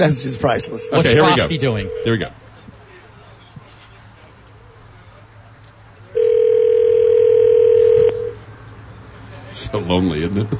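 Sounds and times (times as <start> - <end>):
ringback tone on an outgoing phone call: 0.0 - 2.3, 6.2 - 8.4
speech: 0.0 - 2.4, 9.9 - 10.5
faint low hum: 0.0 - 8.8.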